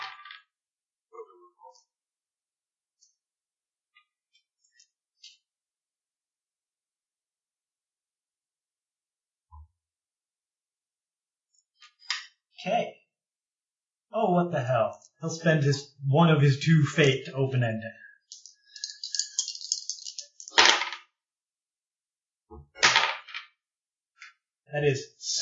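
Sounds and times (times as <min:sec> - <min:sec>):
speech: 0:12.6 - 0:13.0, 0:14.1 - 0:18.0, 0:24.7 - 0:25.3
handful of plastic dice rolling across a table: 0:18.3 - 0:21.1, 0:22.8 - 0:23.6.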